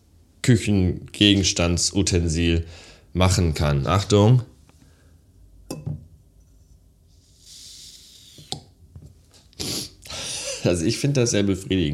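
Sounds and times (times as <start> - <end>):
speech: 0.5 - 4.5, 10.6 - 11.9
glass storage jar clinking and knocking: 5.7 - 6.0
soft hiss of rubber-sealed glass jar lid opening: 7.5 - 8.7.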